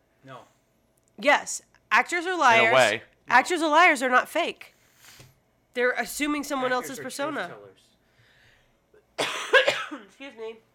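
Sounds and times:
speech: 0.2 - 0.6, 1.2 - 5.2, 5.8 - 7.9, 9.2 - 10.7
person coughing from allergies to blooming palm trees in South Florida: 9.2 - 10.1.

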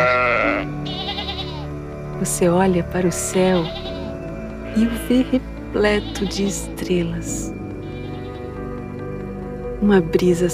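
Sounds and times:
sheep bleating: 0.0 - 1.7, 3.1 - 4.1, 5.9 - 6.7, 7.8 - 8.5
speech: 2.2 - 3.9, 4.7 - 7.6, 9.8 - 10.5.

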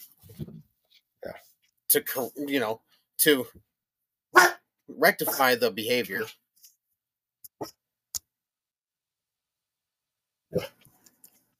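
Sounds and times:
speech: 1.2 - 3.7, 4.3 - 6.4, 7.6 - 7.8
male pet dog barking: 4.4 - 4.6.

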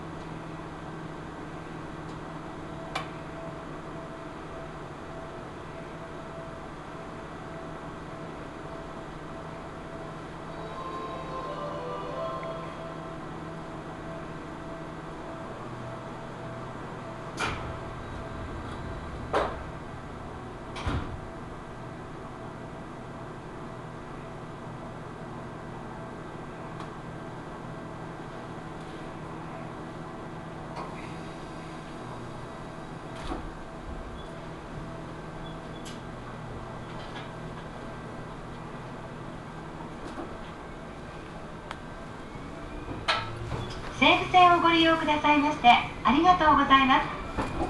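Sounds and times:
local train engine droning while stopped at a station: 0.0 - 47.6
train doors shutting before departure: 8.8 - 21.8, 30.5 - 47.6
speech: 44.1 - 47.1.

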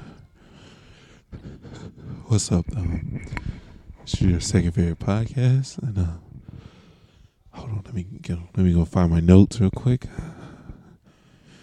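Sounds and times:
heavy breathing against a microphone: 0.0 - 4.3, 6.2 - 7.5, 10.1 - 11.6
speech: 2.3 - 3.4, 4.1 - 6.2, 8.0 - 10.3.

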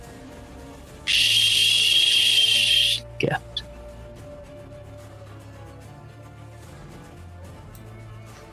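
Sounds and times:
sparking fuse hissing and crackling with a thin high whistle: 1.1 - 3.0
speech: 3.2 - 3.5.

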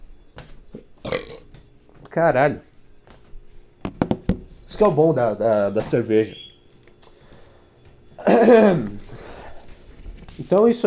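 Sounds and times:
loud raspy burp: 1.0 - 1.5
speech: 2.1 - 2.7, 4.8 - 6.4, 8.2 - 9.0, 10.4 - 10.8.

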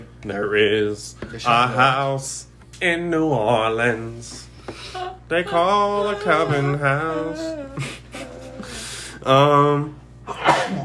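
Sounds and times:
speech: 0.2 - 8.0, 9.2 - 10.8
sharp human sneeze with inhaling gasp: 10.3 - 10.8.

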